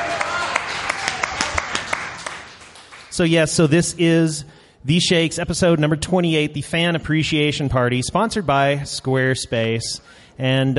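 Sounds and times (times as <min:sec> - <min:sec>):
audience applauding at a fan appreciation party: 0:00.0 - 0:03.2
speech: 0:03.2 - 0:10.7.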